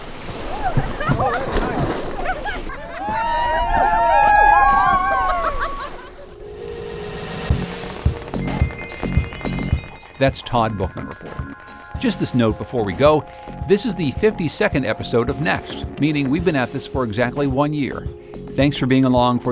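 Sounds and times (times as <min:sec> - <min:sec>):
water splashing from people swimming in a river: 0:00.0 - 0:17.7
several people shouting and laughing excitedly: 0:00.5 - 0:06.4
speech: 0:10.2 - 0:19.5.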